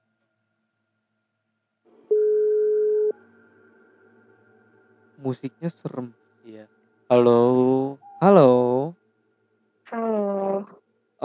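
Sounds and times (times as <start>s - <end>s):
faint hum: 0.0s - 11.2s
steady electronic phone ringback tone: 2.1s - 3.2s
speech: 5.2s - 9.0s.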